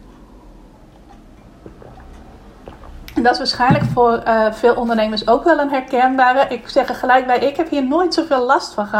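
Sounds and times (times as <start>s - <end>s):
person taking a sip of water: 0.7s - 3.2s
speech: 3.2s - 8.9s.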